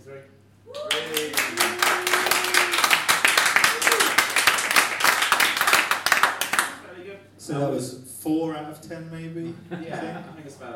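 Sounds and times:
small crowd applauding: 0:00.7 - 0:06.8
laughter: 0:09.6 - 0:10.7
speech: 0:09.6 - 0:10.7.

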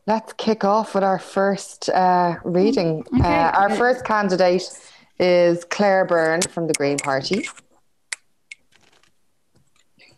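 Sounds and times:
speech: 0:00.1 - 0:07.6
very old much-used deck of cards shuffled for a card reading: 0:08.6 - 0:09.9.

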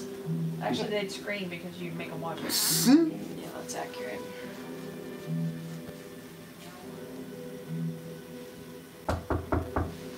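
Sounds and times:
quiet noise: 0:00.0 - 0:10.1
speech: 0:00.6 - 0:04.5
knocking on a door: 0:09.1 - 0:10.0.

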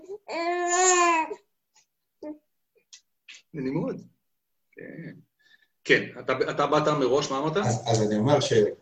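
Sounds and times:
baby boy babbling: 0:00.0 - 0:01.5, 0:02.2 - 0:02.4
speech: 0:03.6 - 0:04.2, 0:04.8 - 0:05.3, 0:05.9 - 0:08.8.

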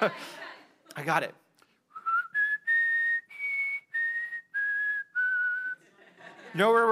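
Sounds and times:
speech: 0:00.0 - 0:00.4, 0:01.0 - 0:01.4, 0:06.5 - 0:06.8
laughter: 0:00.0 - 0:00.6, 0:05.8 - 0:06.8
person whistling a short film theme melody: 0:01.9 - 0:05.8.

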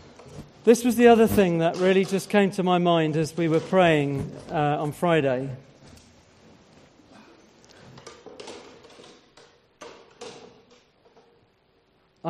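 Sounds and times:
chairs being shifted around a room: 0:00.0 - 0:02.5, 0:03.1 - 0:04.8, 0:07.8 - 0:11.4
speech: 0:00.6 - 0:05.7.

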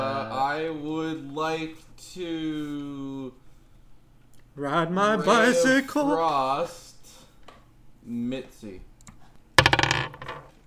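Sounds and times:
speech: 0:00.6 - 0:03.4, 0:04.6 - 0:06.8, 0:08.0 - 0:08.9
dice rolling on a hard tabletop: 0:09.6 - 0:10.6.

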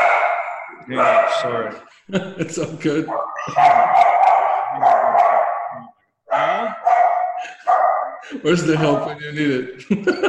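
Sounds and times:
dog barking excitedly with yaps and howl-like cries: 0:00.0 - 0:01.8, 0:03.1 - 0:08.3
speech: 0:00.9 - 0:05.0, 0:08.3 - 0:10.2
laughter: 0:01.7 - 0:05.3, 0:07.3 - 0:10.2.

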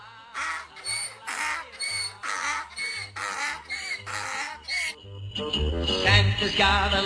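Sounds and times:
donkey braying: 0:00.0 - 0:05.0
speech: 0:06.4 - 0:07.0.

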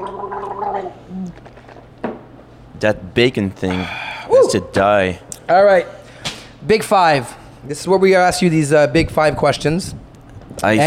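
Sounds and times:
person gulping and gurgling a drink: 0:00.0 - 0:01.8
speech: 0:00.8 - 0:01.6, 0:02.8 - 0:06.0, 0:06.6 - 0:10.0, 0:10.6 - 0:10.8
short breathy exhale: 0:03.7 - 0:04.3.

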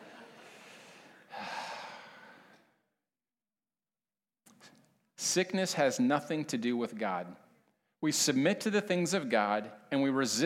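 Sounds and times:
person breathing heavily: 0:00.4 - 0:02.8
person gasping: 0:00.4 - 0:02.8
speech: 0:05.3 - 0:07.4, 0:08.0 - 0:10.4.

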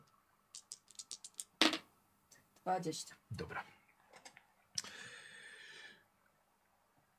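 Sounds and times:
dice rattling: 0:00.5 - 0:01.8
speech: 0:02.6 - 0:03.8.

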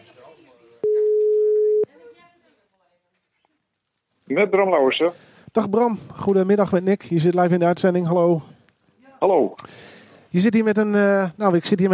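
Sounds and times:
telephone ringing tone as a call is dialed: 0:00.8 - 0:01.9
speech: 0:04.3 - 0:08.5, 0:09.2 - 0:11.9.

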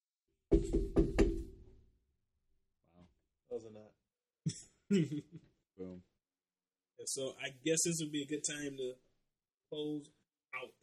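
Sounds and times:
knocking on a door: 0:00.5 - 0:01.8
speech: 0:03.6 - 0:06.1, 0:07.0 - 0:09.1, 0:09.7 - 0:10.8.

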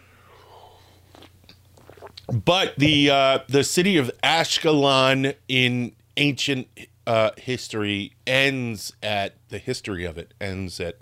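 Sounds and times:
coffee slurp: 0:01.1 - 0:02.3
swallowing: 0:01.1 - 0:02.5
speech: 0:02.3 - 0:11.0.

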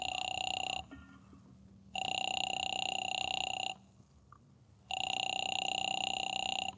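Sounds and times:
telephone ringing with bright electronic tone: 0:00.0 - 0:01.0, 0:02.0 - 0:03.8, 0:04.9 - 0:06.7.

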